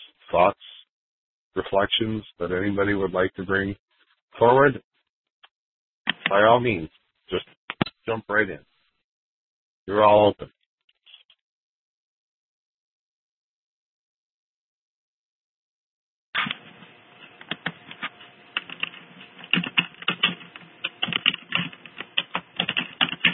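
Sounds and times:
speech: 0:00.3 - 0:00.7, 0:01.6 - 0:04.9, 0:06.3 - 0:08.7, 0:09.9 - 0:10.6
rapid computer keyboard typing: 0:17.4 - 0:23.3.

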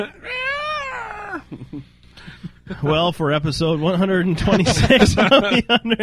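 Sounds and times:
speech: 0:00.0 - 0:00.3, 0:01.3 - 0:02.0, 0:02.7 - 0:06.0
cat screeching: 0:00.0 - 0:01.5
laughter: 0:04.4 - 0:06.0.

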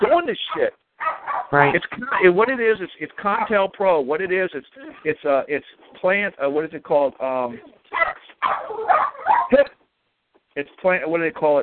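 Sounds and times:
speech: 0:00.0 - 0:00.8, 0:01.5 - 0:09.8, 0:10.6 - 0:11.6
puppy yapping and whimpering: 0:00.5 - 0:02.3, 0:07.6 - 0:09.6.

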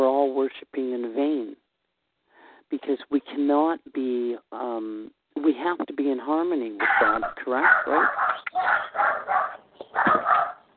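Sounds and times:
speech: 0:00.5 - 0:01.3, 0:02.7 - 0:10.4
dogs barking excitedly with high-pitched yaps: 0:06.8 - 0:10.7.

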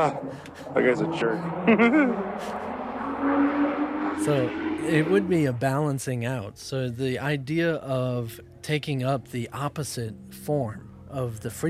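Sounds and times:
car driving by outside: 0:00.0 - 0:06.1
speech: 0:00.0 - 0:11.6
person vocalizing: 0:01.7 - 0:02.2
laughter: 0:01.7 - 0:02.6.

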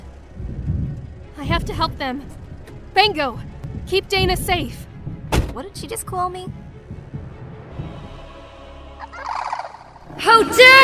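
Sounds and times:
low rumble: 0:00.0 - 0:08.4
speech: 0:01.4 - 0:02.4, 0:03.0 - 0:04.9, 0:05.6 - 0:06.6, 0:10.2 - 0:10.8
shrill warbling gobbling bird cry as it is hit: 0:09.1 - 0:10.0.

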